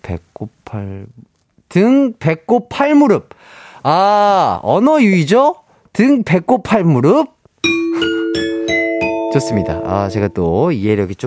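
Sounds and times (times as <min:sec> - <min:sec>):
speech: 0:00.1 - 0:08.5, 0:09.4 - 0:11.2
ding-dong-dang correct-answer chime: 0:07.6 - 0:10.5.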